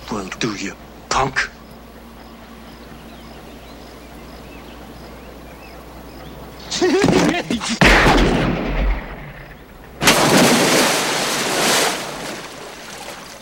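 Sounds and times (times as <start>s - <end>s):
speech: 0.1s - 1.6s, 6.8s - 8.6s
gunshots in a film scene: 7.8s - 11.1s.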